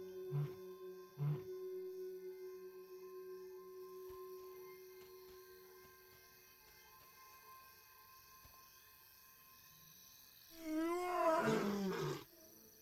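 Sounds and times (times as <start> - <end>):
steady low hum: 0.0 - 6.3
lion roaring a warning call at night: 10.6 - 12.2.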